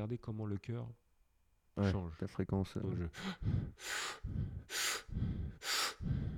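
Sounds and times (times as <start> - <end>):
speech: 0.0 - 1.0, 1.8 - 6.3
deep inhalations and breathy exhalations: 3.1 - 6.3.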